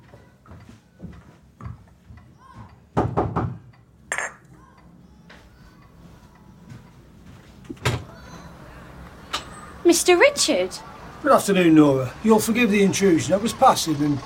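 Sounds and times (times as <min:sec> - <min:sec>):
faint room noise: 0:00.0 - 0:14.2
knocking on a door: 0:03.0 - 0:03.6
speech: 0:09.9 - 0:14.2.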